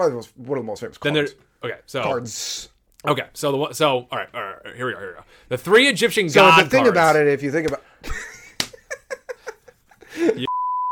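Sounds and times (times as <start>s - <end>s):
speech: 0.0s - 8.3s
laughter: 8.0s - 10.5s
censor beep: 10.5s - 10.9s.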